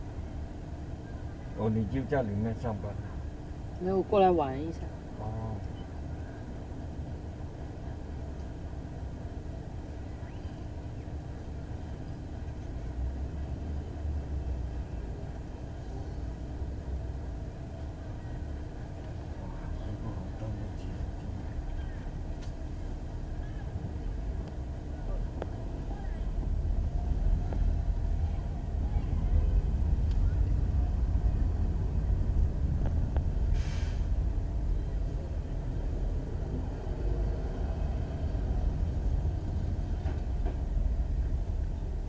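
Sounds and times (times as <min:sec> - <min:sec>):
idling car engines in a traffic jam on a narrow road at rush hour: 0:00.0 - 0:42.0
speech: 0:01.6 - 0:03.1, 0:03.8 - 0:05.7.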